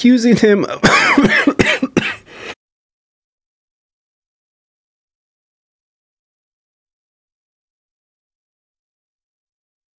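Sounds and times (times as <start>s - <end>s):
speech: 0.0s - 1.4s
raspy throat clearing: 0.6s - 2.3s
person coughing: 0.6s - 2.4s.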